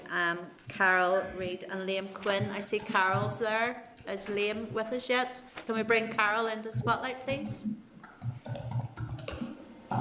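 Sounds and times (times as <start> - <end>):
speech: 0.1 - 7.8
typing on a computer keyboard: 2.4 - 3.5, 8.0 - 9.9.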